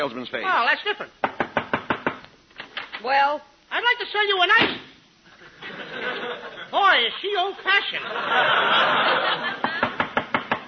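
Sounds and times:
speech: 0.0 - 1.4, 3.0 - 4.9, 5.6 - 9.6
steady noise: 0.0 - 10.6
knocking on a door: 1.2 - 2.2, 9.8 - 10.6
laughter: 5.3 - 6.8, 7.8 - 10.2.

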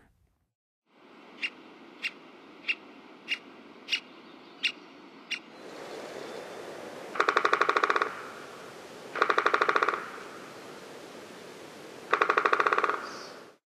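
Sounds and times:
Three-toed Woodpecker in Western USA: 1.4 - 5.5, 7.2 - 8.2, 9.1 - 10.3, 12.1 - 13.6.

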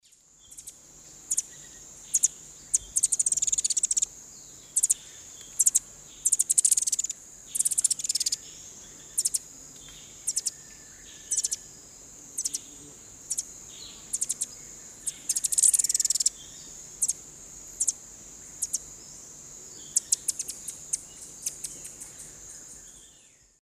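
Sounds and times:
Thlypopsis sordida song and chatter in South American eastern lowlands: 0.0 - 17.2, 17.8 - 19.1, 19.7 - 23.5.

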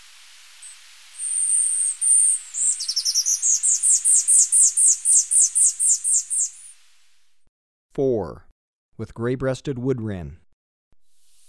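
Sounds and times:
tanager finch singing: 0.6 - 6.7
speech: 8.0 - 10.4.

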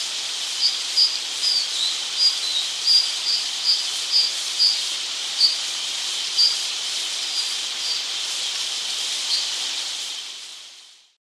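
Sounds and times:
steady loud rushing water in Ecuador: 0.0 - 11.0
White-capped dipper calling in Ecuador: 0.6 - 5.7, 6.3 - 8.1, 9.2 - 9.6.

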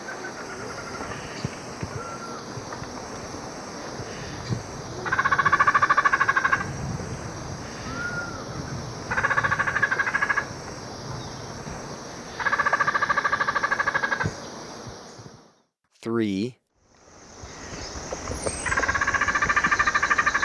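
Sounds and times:
Dusky Spinetail calling in buzzy chattering bursts in Ecuador: 0.0 - 14.7, 17.1 - 20.4.

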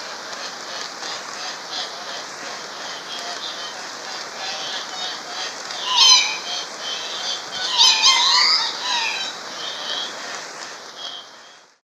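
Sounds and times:
steady hiss: 0.0 - 11.8
Andean cock-of-the-rock giving harsh rising squawks in Ecuador: 5.7 - 10.1.

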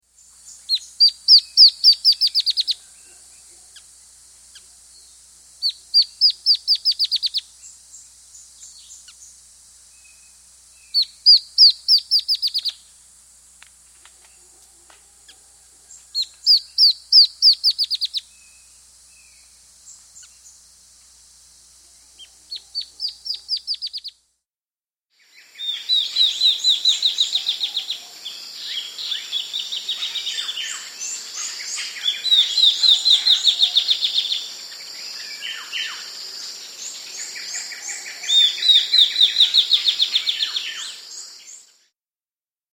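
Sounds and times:
Dot-winged antwren singing in South America: 0.5 - 2.8, 5.6 - 9.3, 10.0 - 12.8, 16.1 - 18.6, 22.2 - 24.1, 25.5 - 28.0, 28.6 - 36.0, 36.9 - 41.6.

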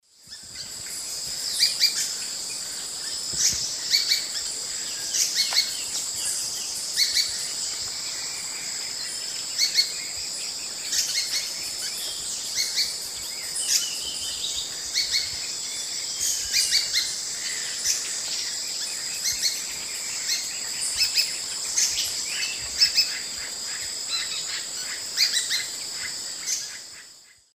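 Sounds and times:
Platyrinchus saturatus calls in eastern lowlands of South America: 0.2 - 27.5.

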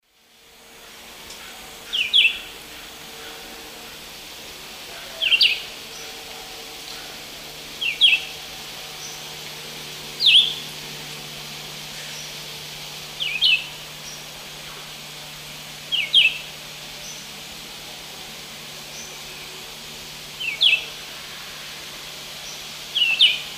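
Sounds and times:
Vireo olivaceus song: 1.8 - 3.4, 5.1 - 6.2, 7.8 - 9.2, 10.2 - 10.7, 13.2 - 14.8, 15.9 - 17.2, 20.4 - 20.9, 22.4 - 23.5.

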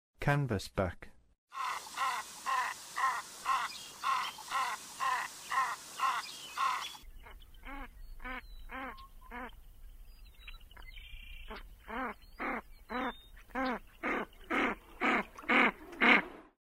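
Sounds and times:
canvasback duck calling: 1.5 - 9.6, 11.5 - 16.2.

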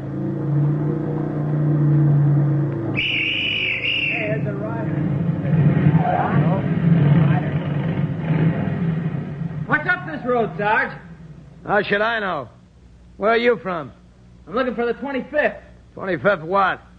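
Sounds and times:
motorcycle engine rumbling along a road: 0.0 - 12.2
speech: 10.6 - 11.0, 11.6 - 12.6, 13.2 - 16.9.

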